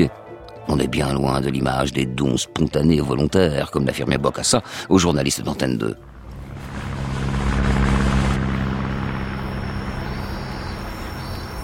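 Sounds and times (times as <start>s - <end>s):
speech: 0.0s - 6.1s
large propeller cargo aircraft engine roaring: 6.0s - 11.6s.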